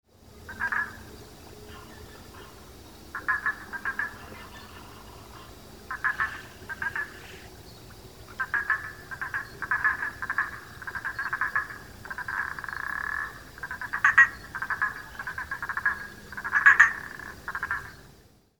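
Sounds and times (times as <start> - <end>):
Boana prasina frog calling: 0.5 - 18.1.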